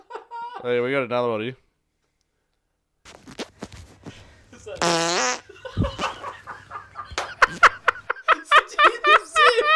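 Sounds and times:
speech: 0.6 - 1.6
three-part fart: 4.8 - 5.5
people snickering and laughing: 5.4 - 9.7.

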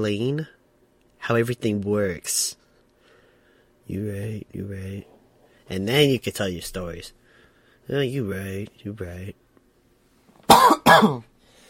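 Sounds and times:
speech: 0.0 - 0.6, 1.3 - 2.6, 3.9 - 7.2, 7.9 - 9.4, 10.5 - 11.3
harsh person coughing: 10.5 - 11.3.

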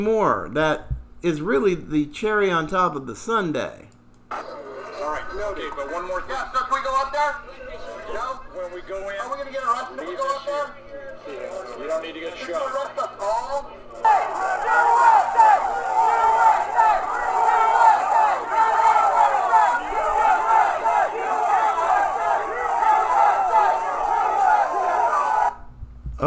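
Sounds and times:
speech: 0.0 - 4.4, 5.3 - 14.9
large crowd chanting in unison outdoors at a barrier checkpoint: 14.0 - 25.6.

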